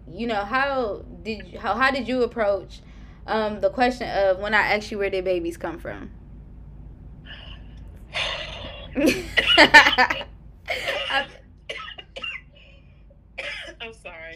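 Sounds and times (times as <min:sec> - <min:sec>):
speech: 0:00.1 - 0:06.2, 0:09.0 - 0:11.2
coughing from a dry throat: 0:08.2 - 0:12.8, 0:13.4 - 0:14.0.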